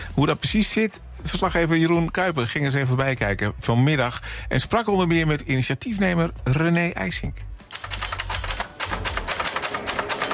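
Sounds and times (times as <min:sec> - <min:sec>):
speech: 0:00.2 - 0:07.5
mechanical typewriter keystrokes: 0:07.6 - 0:10.3.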